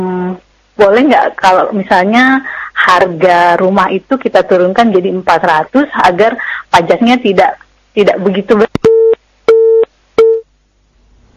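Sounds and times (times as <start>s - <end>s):
speech: 0.8s - 8.8s
telephone busy signal after a dropped call: 8.8s - 10.5s.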